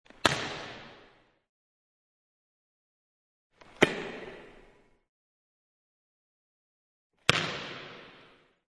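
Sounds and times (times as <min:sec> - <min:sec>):
volleyball being hit: 0:03.8 - 0:04.5, 0:07.3 - 0:08.3.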